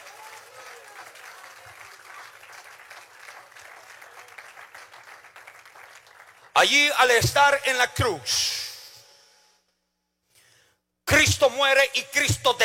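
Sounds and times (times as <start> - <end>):
audience applauding loudly: 0.0 - 6.6
speech: 6.6 - 8.6, 11.3 - 12.6.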